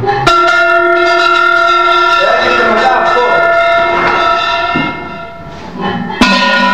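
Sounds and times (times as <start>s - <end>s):
large bell ringing: 0.0s - 6.7s
murmuring voices: 2.1s - 6.1s.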